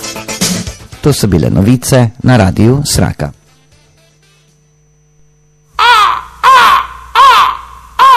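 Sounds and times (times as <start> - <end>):
speech: 1.0 - 3.4
harsh raspy bird screeches: 5.8 - 8.1.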